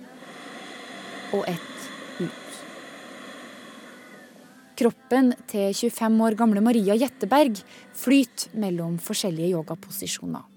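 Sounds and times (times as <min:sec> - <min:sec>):
deep breath drawn in: 0:00.0 - 0:04.6, 0:07.6 - 0:07.9
speech: 0:01.3 - 0:02.4, 0:04.8 - 0:10.5.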